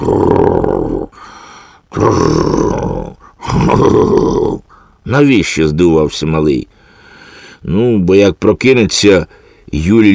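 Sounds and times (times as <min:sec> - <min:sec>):
speech: 0:00.0 - 0:00.4, 0:05.1 - 0:06.8, 0:07.6 - 0:10.1
person imitating loud rasping snoring: 0:00.0 - 0:01.2, 0:01.9 - 0:04.8.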